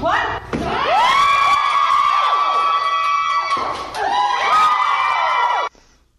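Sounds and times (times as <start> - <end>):
high whoops from the crowd: 0.7 - 5.7
crowd cheering and shrieking at watermelon-crushing record attempt: 0.8 - 5.7.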